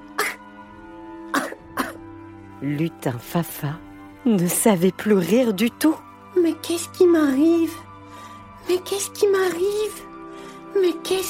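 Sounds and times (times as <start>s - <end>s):
person coughing when trying to laugh: 0.2s - 0.4s, 1.3s - 2.0s
speech: 2.6s - 7.8s, 8.7s - 10.1s, 10.8s - 11.2s.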